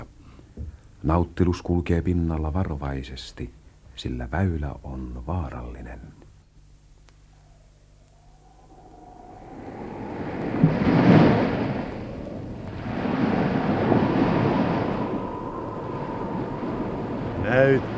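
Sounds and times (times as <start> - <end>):
constant windy hiss: 0.0 - 17.9
speech: 1.0 - 6.2, 17.6 - 17.9
rushing sea water and surf: 8.1 - 17.9.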